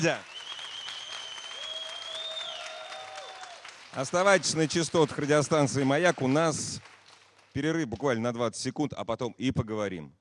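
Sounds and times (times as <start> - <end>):
speech: 0.0 - 0.3, 3.9 - 6.9, 7.6 - 10.1
large audience applause: 0.0 - 7.6.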